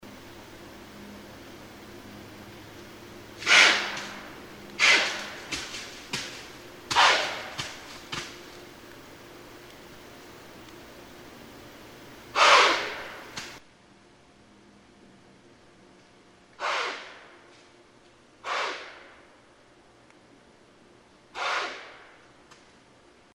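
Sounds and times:
White-tailed deer: 0:03.4 - 0:05.9, 0:06.9 - 0:07.8, 0:12.3 - 0:13.2, 0:16.6 - 0:17.4, 0:18.4 - 0:19.2, 0:21.3 - 0:22.2.

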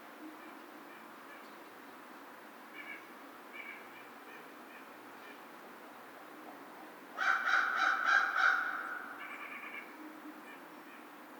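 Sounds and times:
American crow giving rapid rasping caws: 0:07.2 - 0:11.0.

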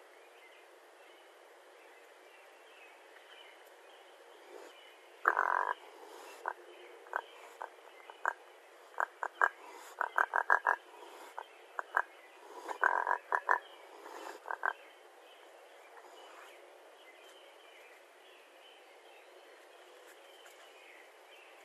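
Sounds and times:
faint steady hiss: 0:00.0 - 0:21.6
raccoon chittering: 0:04.4 - 0:14.8
speech: 0:05.3 - 0:08.4.

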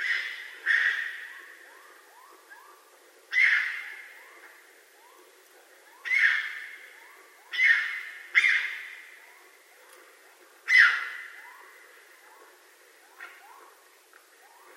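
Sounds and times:
raccoon screeching: 0:00.0 - 0:01.3, 0:03.3 - 0:04.1, 0:06.0 - 0:06.7, 0:07.5 - 0:08.9, 0:10.7 - 0:11.7.

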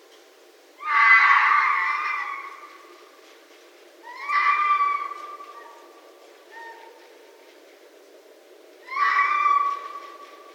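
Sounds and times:
red fox giving a faint short cry: 0:00.8 - 0:02.8, 0:04.0 - 0:05.8, 0:08.8 - 0:10.5.

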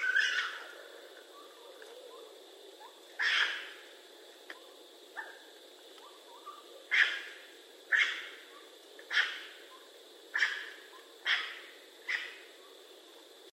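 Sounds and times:
raccoon quiet chirping: 0:00.0 - 0:13.5
raccoon giving raspy hissing bursts: 0:03.2 - 0:03.8, 0:06.4 - 0:12.6.

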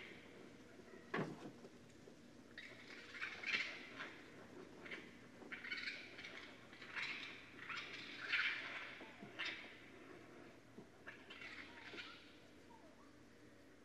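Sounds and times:
faint low hum: 0:00.0 - 0:13.8
raccoon making raspy chittering squeals: 0:02.6 - 0:09.9, 0:11.0 - 0:12.4.

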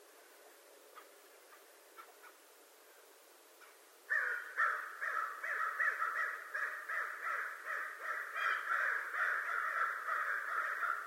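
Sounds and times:
American crow cawing: 0:04.1 - 0:11.0.

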